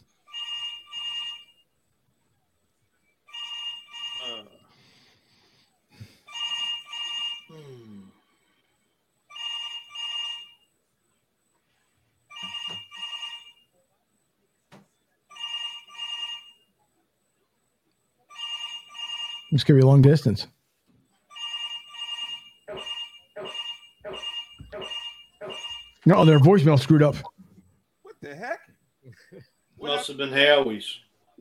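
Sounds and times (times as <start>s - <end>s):
telephone ringing while a call is being placed: 0.2s - 1.6s, 3.3s - 4.5s, 6.2s - 7.5s, 9.3s - 10.7s, 12.3s - 13.6s, 15.3s - 16.7s, 18.3s - 19.8s, 21.3s - 26.8s
speech: 19.5s - 20.6s, 26.1s - 27.3s, 29.4s - 31.0s.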